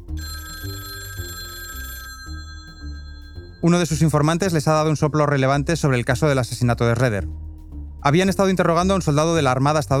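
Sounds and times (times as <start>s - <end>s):
telephone ringing with an incoming call: 0.0s - 4.4s
low shifting musical bed of notes: 0.0s - 9.9s
speech: 0.2s - 0.4s, 3.6s - 7.4s, 8.0s - 9.9s.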